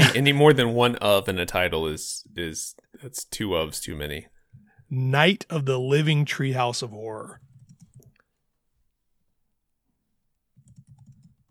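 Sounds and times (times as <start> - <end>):
speech: 0.1 - 4.3, 4.9 - 7.5
computer keyboard typing: 7.5 - 8.2, 10.6 - 11.4.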